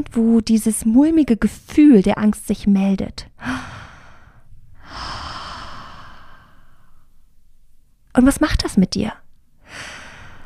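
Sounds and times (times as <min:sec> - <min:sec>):
speech: 0:00.0 - 0:03.7, 0:08.2 - 0:09.9
deep calming breath: 0:03.4 - 0:07.2, 0:09.6 - 0:10.4.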